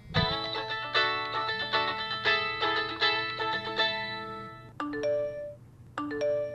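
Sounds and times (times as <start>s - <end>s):
phone electronic ringtone melody: 0.3s - 6.5s
phone message notification chimes: 4.8s - 6.5s.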